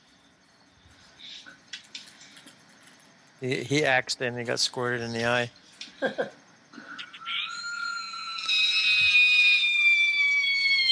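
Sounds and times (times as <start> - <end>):
speech: 3.4 - 6.4
loud high-pitched shrill scream: 7.0 - 10.9.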